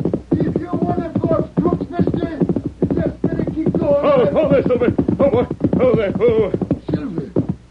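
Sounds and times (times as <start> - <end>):
horse galloping: 0.0 - 7.6.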